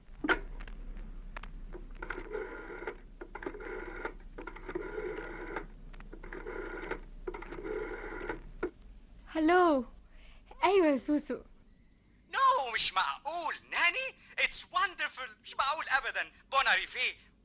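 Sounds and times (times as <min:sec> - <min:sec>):
low hum: 0:00.0 - 0:17.4
telephone being dialed in a household: 0:02.0 - 0:08.7
speech: 0:09.4 - 0:09.9, 0:10.6 - 0:11.5, 0:14.9 - 0:17.3.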